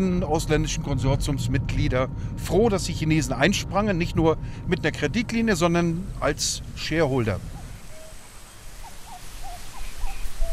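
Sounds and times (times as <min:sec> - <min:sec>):
speech: 0:00.0 - 0:07.6
warm wind in 4-metre-high reeds: 0:06.1 - 0:10.5
whistled bird calls in a reed marsh at a river delta: 0:07.5 - 0:10.5.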